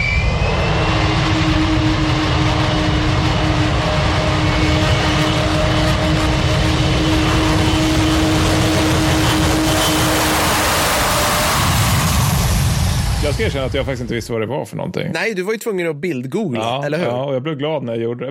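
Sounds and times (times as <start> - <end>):
Avro Vulcan jet bomber engine roar: 0.0 - 14.3
speech: 13.4 - 18.2.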